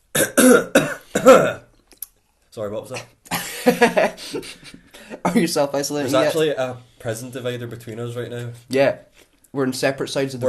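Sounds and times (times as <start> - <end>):
harsh throaty coughs: 0.1 - 1.7
speech: 0.4 - 1.6, 2.6 - 10.4
laughter: 3.3 - 4.8.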